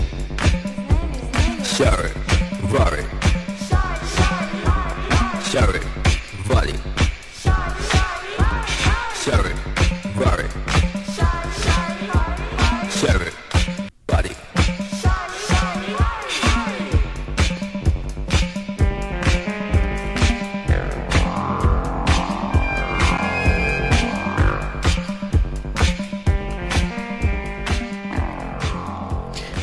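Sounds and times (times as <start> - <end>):
Detroit techno track with electronic synth sounds: 0.0 - 29.6
speech: 1.8 - 3.2
bright sweeping synthesizer lines: 19.7 - 25.3.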